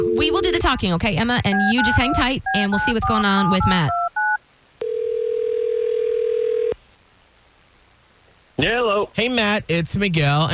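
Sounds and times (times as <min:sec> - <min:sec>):
electronic telephone ringback tone while a call is being placed: 0:00.0 - 0:00.6, 0:01.5 - 0:06.8
speech: 0:00.0 - 0:04.0, 0:08.6 - 0:10.5.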